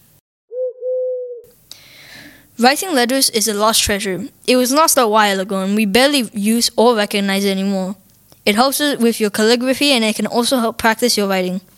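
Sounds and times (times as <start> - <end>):
pigeon giving a low coo: 0.5 - 1.5
speech: 2.6 - 11.7.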